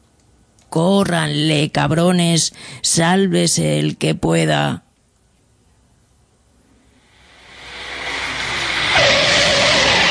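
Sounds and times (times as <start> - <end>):
speech: 0.7 - 4.8
rushing roar: 7.0 - 10.1
sharp steady screech: 7.1 - 10.1
car tires squealing as it skids to a stop: 7.4 - 10.1.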